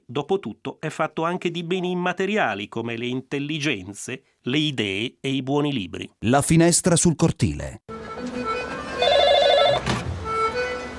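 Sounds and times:
speech: 0.1s - 7.9s
telephone ringing: 8.4s - 10.0s.

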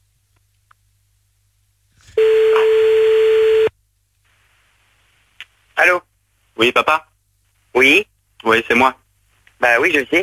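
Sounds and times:
telephone ringback tone on a call back: 2.2s - 3.7s
speech: 6.6s - 7.1s, 7.8s - 9.0s, 9.6s - 10.2s.

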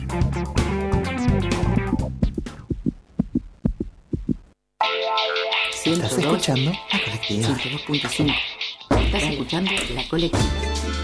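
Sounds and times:
loud music: 0.0s - 2.6s, 4.8s - 11.0s
heartbeat thumps: 1.4s - 4.6s, 5.8s - 10.8s
speech: 5.9s - 11.0s.

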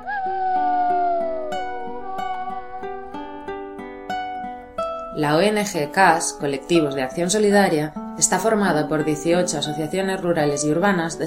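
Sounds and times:
long wavering howl sliding downward in pitch: 0.0s - 4.5s
rhythmic run of plucked musical notes: 0.0s - 11.2s
speech: 5.2s - 11.2s.

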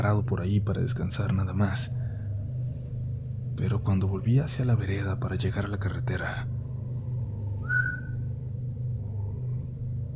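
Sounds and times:
speech: 0.0s - 2.0s, 3.6s - 6.5s
steady low rumble: 0.0s - 10.1s
person whistling: 7.6s - 8.2s.

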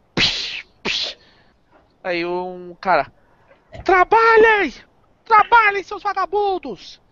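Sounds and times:
whip cracks: 0.2s - 1.2s
speech: 2.0s - 3.2s, 3.8s - 7.0s.

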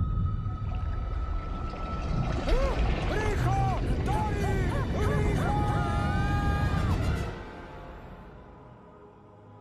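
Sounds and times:
whale calling in the ocean: 0.1s - 7.6s.

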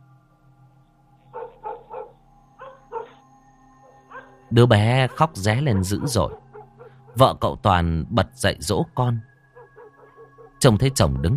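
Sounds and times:
dogs barking in a village at night: 1.3s - 3.2s, 3.9s - 7.3s, 9.5s - 10.6s
speech: 4.5s - 6.4s, 7.2s - 9.3s, 10.6s - 11.3s.

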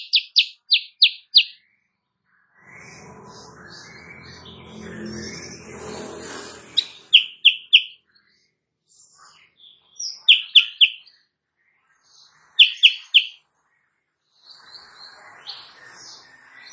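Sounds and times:
sooty-headed bulbul singing energetically in the morning: 0.0s - 1.7s, 2.6s - 8.1s, 9.2s - 11.2s, 12.3s - 13.5s.

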